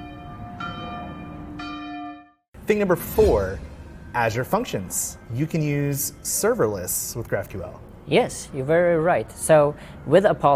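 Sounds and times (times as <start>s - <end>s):
church bell ringing: 0.0s - 7.7s
speech: 2.7s - 10.5s.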